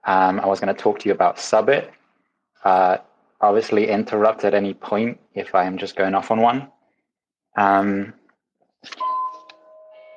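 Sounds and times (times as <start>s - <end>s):
speech: 0.0s - 2.0s, 2.6s - 6.8s, 7.6s - 8.2s, 8.8s - 9.1s
doorbell ding-dong chime for a delivery: 9.0s - 10.1s.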